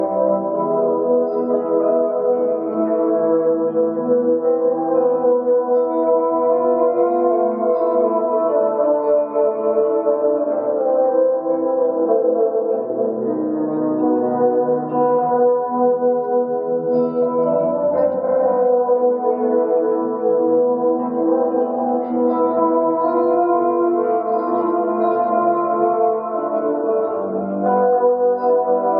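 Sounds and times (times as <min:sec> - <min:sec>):
guitar: 0:00.0 - 0:28.9.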